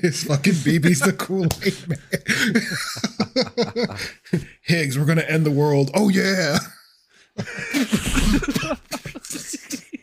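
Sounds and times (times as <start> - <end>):
speech: 0.0 - 6.8, 7.4 - 9.1
laughter: 0.5 - 4.4, 7.4 - 10.0
harsh raspy coughing fit: 7.4 - 10.0.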